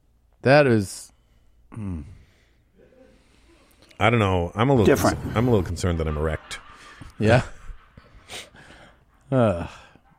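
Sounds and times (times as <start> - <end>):
speech: 0.4 - 1.1, 1.7 - 2.2, 4.0 - 7.6, 9.3 - 9.8
heavy breathing: 1.2 - 4.0, 6.6 - 10.1
laughter: 4.7 - 10.0.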